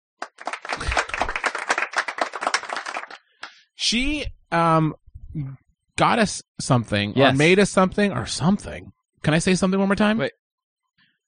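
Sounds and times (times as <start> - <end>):
small crowd applauding: 0.2 - 3.3
speech: 3.8 - 10.4.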